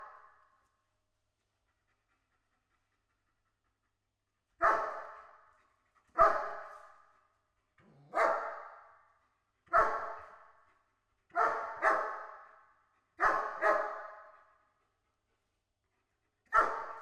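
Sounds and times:
German Shepherd dog barking: 0.0 - 0.5, 4.6 - 5.4, 6.1 - 7.0, 8.0 - 9.1, 9.7 - 10.6, 11.3 - 14.6, 16.5 - 17.0.

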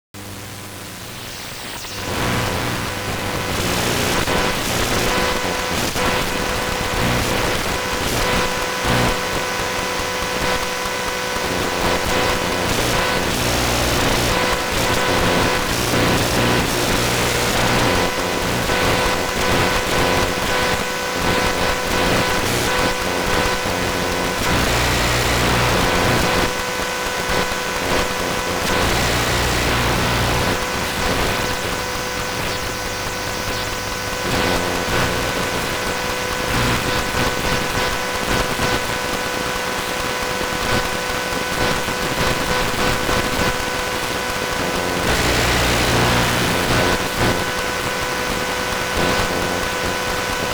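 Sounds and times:
iMac electromagnetic field noise while calculating: 0.2 - 50.5.

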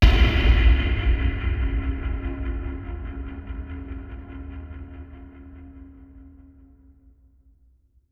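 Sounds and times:
distant long cinematic impacts: 0.0 - 7.0.

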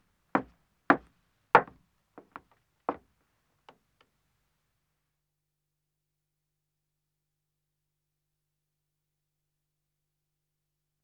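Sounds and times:
woman's footsteps ascending wooden stairs: 0.4 - 3.0.

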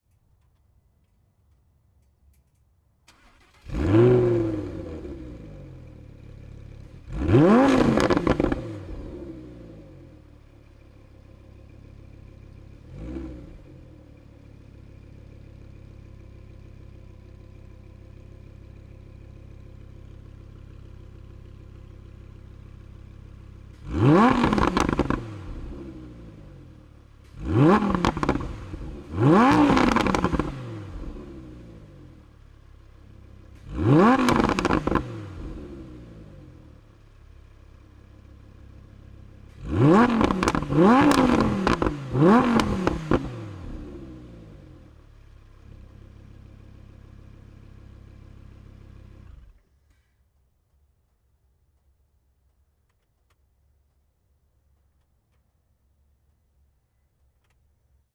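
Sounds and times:
2014 Lamborghini Huracan engine starting, exterior: 3.1 - 50.2
2014 Lamborghini Huracan engine throttle blips, exterior: 7.1 - 9.3, 23.8 - 26.3, 27.3 - 31.8, 33.6 - 36.2, 39.6 - 44.3.

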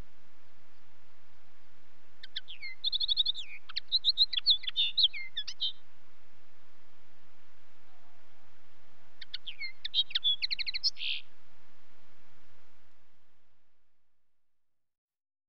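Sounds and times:
faint background hiss: 0.0 - 14.7
Common linnet twittering with quick chirps and a brief trill: 2.2 - 5.8, 9.2 - 11.3.

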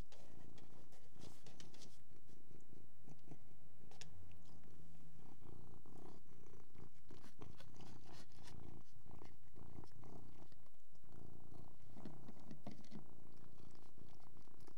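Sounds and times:
faint steady hum: 0.0 - 14.7
Persian cat purring while eating: 2.5 - 14.7.

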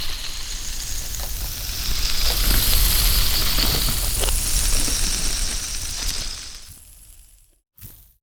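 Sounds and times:
hand spinner whirring: 0.2 - 6.7.

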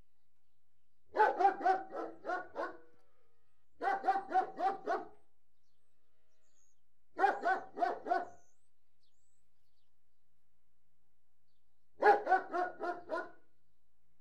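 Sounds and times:
German Shepherd barking indoors: 1.1 - 3.0, 3.8 - 5.2, 7.2 - 8.4, 12.0 - 13.4.

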